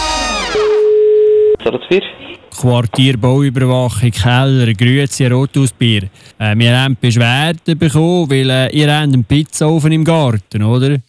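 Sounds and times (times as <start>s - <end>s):
telephone line tone while placing a call: 0.4s - 1.6s
speech: 1.6s - 11.0s.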